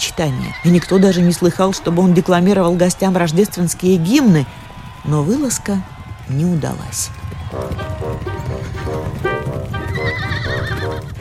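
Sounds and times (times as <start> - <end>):
horse galloping hoofbeats: 0.0 - 11.1
speech: 0.2 - 9.3
horse neighing and whinnying: 0.4 - 1.8, 9.8 - 11.1.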